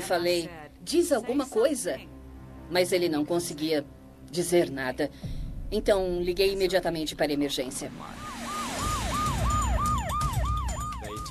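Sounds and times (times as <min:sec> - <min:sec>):
low rumble of road traffic: 0:00.0 - 0:11.2
speech: 0:00.1 - 0:02.1, 0:02.7 - 0:08.3
ambulance siren yelping: 0:08.0 - 0:11.2.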